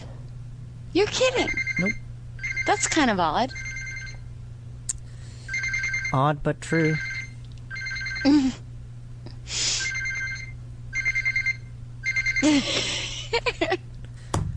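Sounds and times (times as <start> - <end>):
speech: 0.9 - 2.0, 2.6 - 3.6, 6.1 - 7.1, 8.2 - 8.6, 12.4 - 13.8
cell phone ringing: 1.2 - 4.3, 5.4 - 8.5, 9.8 - 12.6.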